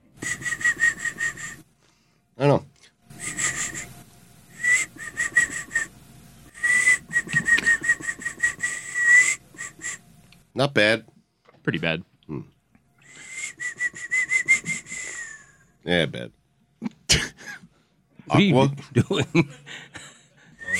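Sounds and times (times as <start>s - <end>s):
person whistling a tune: 0.2s - 1.6s, 3.2s - 3.9s, 4.5s - 5.9s, 6.5s - 10.0s, 13.0s - 15.6s, 20.6s - 20.7s
speech: 10.6s - 11.1s, 11.7s - 12.5s, 15.9s - 16.4s, 18.3s - 19.6s
laughter: 18.8s - 20.7s.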